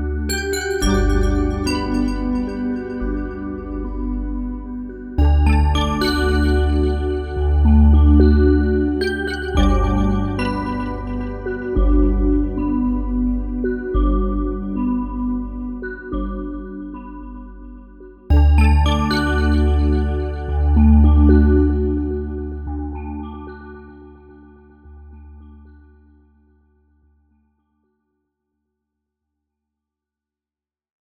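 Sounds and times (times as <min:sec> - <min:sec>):
echoing bells: 0:00.2 - 0:04.3, 0:05.2 - 0:24.2.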